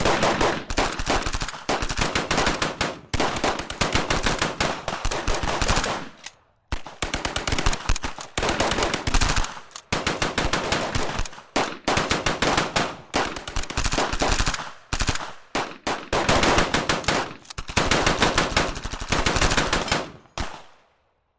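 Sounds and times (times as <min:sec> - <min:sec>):
modern firefight gunfire: 0:00.0 - 0:20.8.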